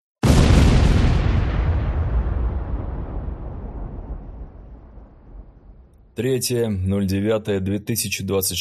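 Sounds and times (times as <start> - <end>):
RPG-36 rocket-propelled grenade explosion with heavy rolling rumble: 0.2 - 6.2
speech: 6.2 - 8.5.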